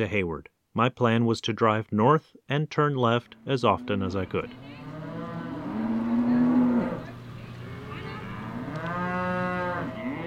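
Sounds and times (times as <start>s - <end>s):
speech: 0.0s - 4.7s
young cows mooing: 3.3s - 10.2s.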